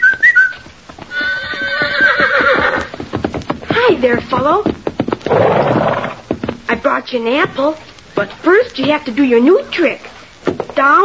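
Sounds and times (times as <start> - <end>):
boy's short two-note whistle: 0.0 - 0.7
horse trotting with hooves clip-clopping: 0.0 - 11.0
horse giving a long loud whinny: 1.1 - 2.9, 5.3 - 6.3
speech: 4.0 - 4.8, 6.9 - 10.1, 10.8 - 11.0.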